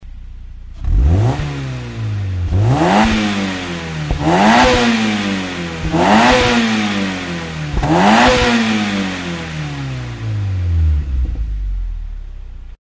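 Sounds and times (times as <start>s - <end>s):
MX5 car muffler exhaust: 0.0s - 12.8s.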